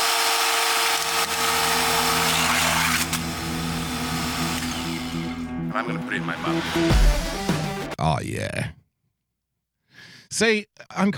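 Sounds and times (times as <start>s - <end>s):
chainsaw engine running: 0.0s - 7.8s
speech: 5.8s - 7.3s, 8.0s - 8.8s, 10.3s - 11.1s.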